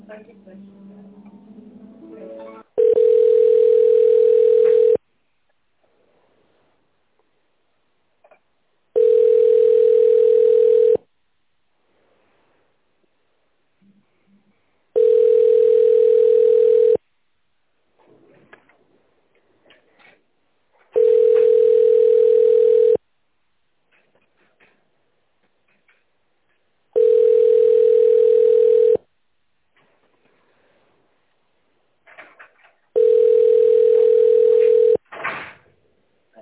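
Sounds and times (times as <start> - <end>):
long telephone line beeps while a call is transferred: 2.8 - 5.0, 9.0 - 11.0, 15.0 - 17.0, 21.0 - 23.0, 27.0 - 29.0, 33.0 - 35.0.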